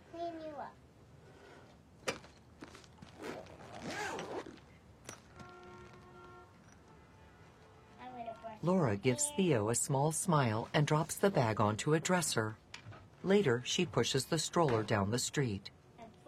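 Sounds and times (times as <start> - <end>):
speech: 0.6 - 0.9, 8.6 - 12.6, 13.2 - 15.8
zipper rasping shut on a small toiletry bag: 3.0 - 4.6.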